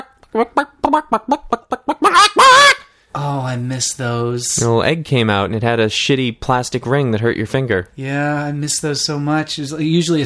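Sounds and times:
voice imitating a plastic toy chicken clucking and squawking: 0.0s - 2.9s
speech: 0.4s - 1.4s, 3.6s - 10.2s.

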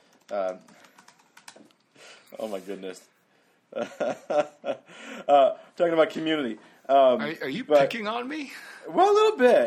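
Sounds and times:
computer keyboard typing: 0.0s - 2.0s
speech: 0.3s - 0.8s, 2.3s - 9.6s.

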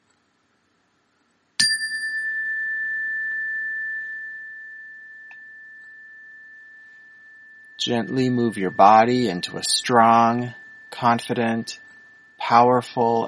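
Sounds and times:
meditation chime ringing: 1.6s - 13.2s
speech: 7.8s - 11.8s, 12.4s - 13.2s.

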